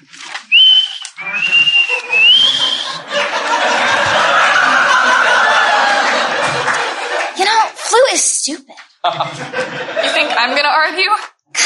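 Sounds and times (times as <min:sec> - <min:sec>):
person whistling: 0:00.5 - 0:03.0
laughter: 0:01.1 - 0:08.0, 0:09.0 - 0:11.0
speech: 0:08.5 - 0:11.3.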